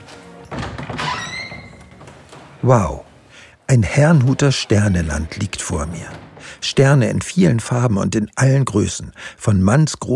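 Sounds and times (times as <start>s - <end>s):
door to a museum exhibition room opening: 0.4s - 7.8s
speech: 2.6s - 3.0s, 3.7s - 10.1s.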